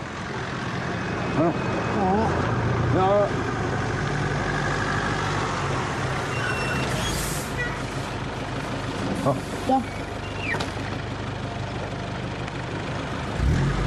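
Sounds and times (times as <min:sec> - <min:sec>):
large bus engine idling: 0:00.0 - 0:13.8
speech: 0:01.4 - 0:01.7, 0:09.2 - 0:10.0
bus squealing brake chirps: 0:06.2 - 0:07.8, 0:10.0 - 0:10.8.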